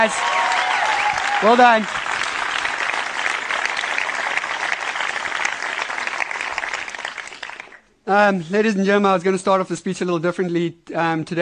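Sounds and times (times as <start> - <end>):
speech: 0.0 - 0.4, 1.4 - 2.0, 8.1 - 11.3
crowd applauding: 0.0 - 7.8.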